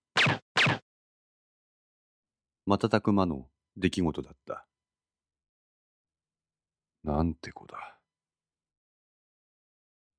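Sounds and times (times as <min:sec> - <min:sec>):
suppressed pistol gunshots: 0:00.2 - 0:00.8
speech: 0:02.7 - 0:04.7, 0:07.0 - 0:08.0.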